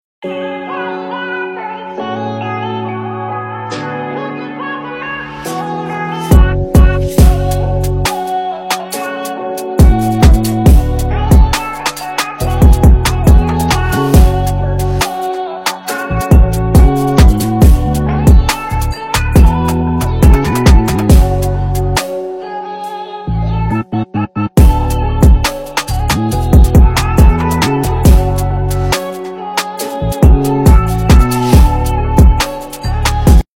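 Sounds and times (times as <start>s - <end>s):
drill trap beat: 6.3s - 22.4s, 23.7s - 33.4s.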